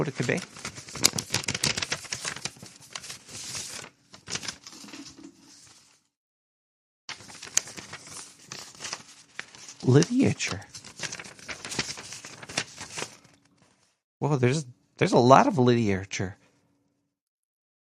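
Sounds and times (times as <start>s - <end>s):
speech: 0.0s - 1.1s, 9.9s - 10.7s, 14.2s - 16.4s
paper package of wellness gummies crinkling and tearing: 0.0s - 6.0s, 7.1s - 13.8s.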